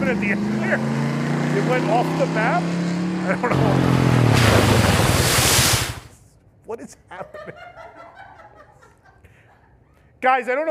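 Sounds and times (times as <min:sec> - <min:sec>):
speech: 0:00.1 - 0:05.0, 0:06.7 - 0:08.0, 0:10.2 - 0:10.6
ocean surf: 0:04.3 - 0:06.1
laughter: 0:07.1 - 0:10.0.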